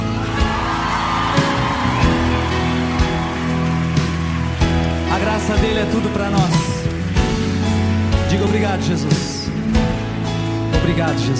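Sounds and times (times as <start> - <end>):
audience whoops and cheers: 0.0 - 5.6
audience applauding: 0.0 - 10.2
speech: 5.8 - 6.6, 8.4 - 9.4, 10.9 - 11.3.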